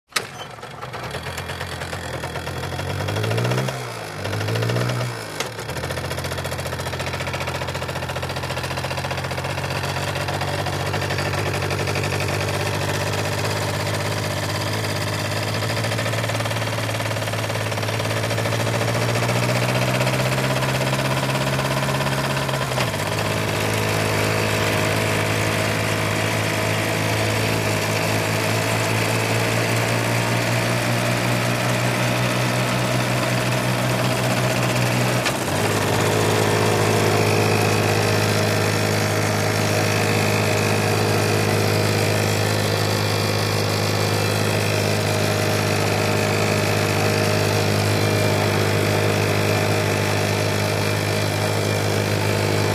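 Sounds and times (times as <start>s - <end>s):
motorcycle starting, moving and turning off: 0.0s - 52.7s.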